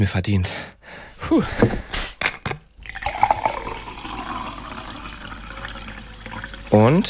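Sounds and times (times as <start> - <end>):
speech: 0.0 - 2.0, 6.8 - 7.0
drink pouring into a glass: 2.8 - 7.0.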